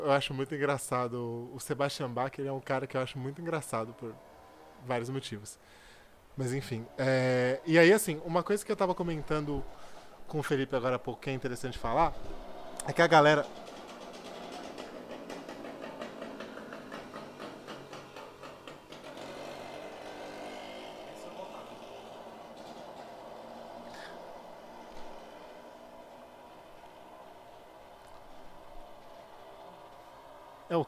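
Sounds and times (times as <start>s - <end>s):
speech: 0.1s - 4.3s, 4.8s - 5.8s, 6.4s - 13.6s
sugarcane cutter engine running: 6.5s - 30.8s.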